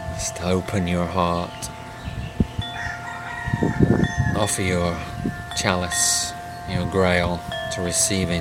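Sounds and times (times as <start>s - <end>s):
speech: 0.2s - 1.7s, 4.4s - 8.3s
rooster crowing: 2.6s - 5.1s.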